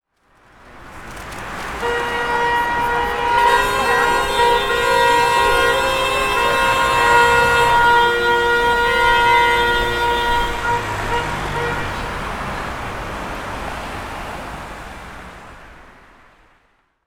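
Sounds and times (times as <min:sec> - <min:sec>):
car horns honking: 0:01.6 - 0:12.9.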